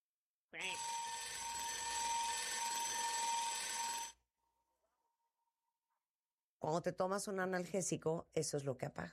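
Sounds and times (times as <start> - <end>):
speech: 0.5 - 1.0, 6.6 - 9.1
loud harsh alarm ringing with metallic clanging: 0.6 - 4.2.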